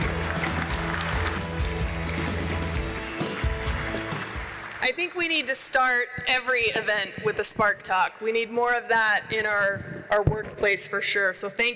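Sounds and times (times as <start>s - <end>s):
crowd applauding a panel at an event: 0.0s - 5.2s
speech: 4.9s - 11.7s.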